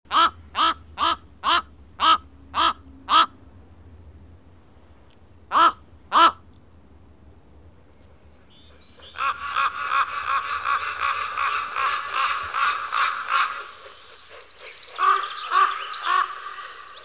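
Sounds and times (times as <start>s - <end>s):
raven: 0.1s - 3.4s, 5.5s - 6.4s, 8.6s - 17.0s.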